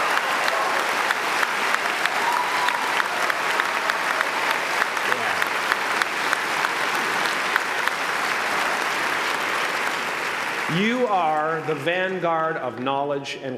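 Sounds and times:
large crowd applauding: 0.0s - 13.1s
speech: 10.8s - 13.5s.

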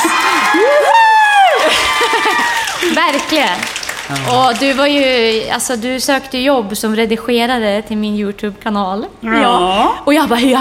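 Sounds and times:
laughter: 0.0s - 3.0s
lively live audience cheering with whoops and shouts: 0.0s - 5.1s
live audience applause: 0.0s - 5.5s
speech: 3.1s - 10.5s.

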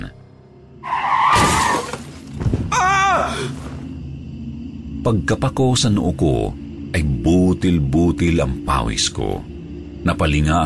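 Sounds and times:
car tires skidding: 0.8s - 2.2s
car crash impact: 1.2s - 2.7s
glass shattering: 1.3s - 2.5s
speech: 5.0s - 10.6s.

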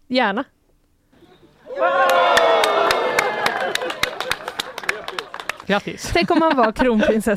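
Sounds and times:
speech: 0.1s - 0.6s, 5.7s - 7.3s
crowd cheering and shouting: 1.4s - 5.6s
laughter: 1.7s - 7.3s
applause: 1.8s - 6.2s.

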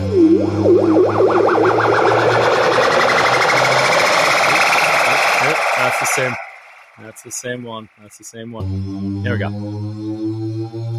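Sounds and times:
droning low hum with gritty distorted texture: 0.0s - 8.5s
loud synthesized riser sweeping upward: 0.0s - 10.9s
speech: 6.2s - 6.4s, 7.0s - 10.9s.

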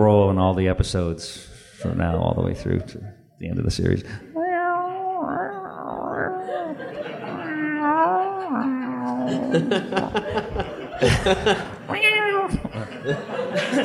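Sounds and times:
speech: 0.0s - 4.3s, 9.3s - 12.1s, 12.8s - 13.8s
bursts of laughter: 1.7s - 4.2s, 6.1s - 13.8s
human voice imitating a dying cat's wailing yowl: 4.3s - 10.2s, 11.9s - 12.7s.

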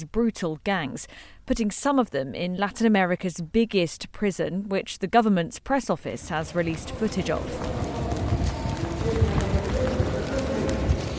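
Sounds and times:
speech: 0.0s - 7.8s
rows of people running inside a large prison: 6.2s - 11.1s.

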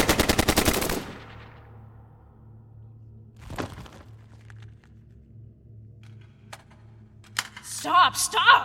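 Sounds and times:
automatic gunfire from hostile fighters: 0.0s - 1.4s
low hum: 0.8s - 7.8s
speech: 7.8s - 8.6s.

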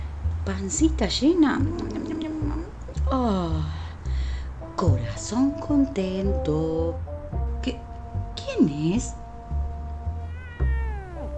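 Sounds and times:
low rumbling noise: 0.0s - 11.3s
speech: 0.5s - 2.0s, 3.1s - 3.8s, 4.8s - 7.8s, 8.6s - 9.2s
kitten meowing: 10.2s - 11.3s.

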